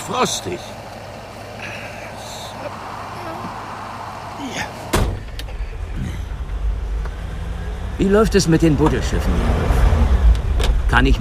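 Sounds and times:
speech: 0.1s - 0.8s, 8.0s - 9.8s, 10.9s - 11.1s
car door closing as someone gets into a car: 4.7s - 5.8s
low rumble: 5.2s - 11.1s.

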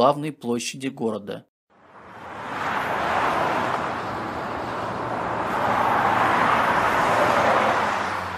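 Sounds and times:
speech: 0.0s - 1.5s
cars passing along a wide city street: 1.7s - 8.3s.

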